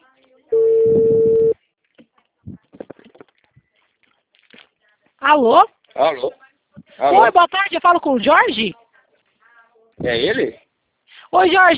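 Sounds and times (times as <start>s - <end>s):
soft scattered sounds: 0.0s - 11.7s
telephone steady electronic tone placing a call: 0.5s - 1.6s
speech: 5.3s - 6.4s, 7.0s - 8.8s, 10.0s - 10.6s, 11.3s - 11.7s.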